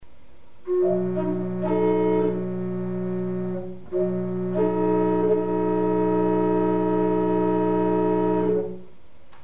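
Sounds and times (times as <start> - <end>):
microtonal dissonance: 0.6 - 9.0.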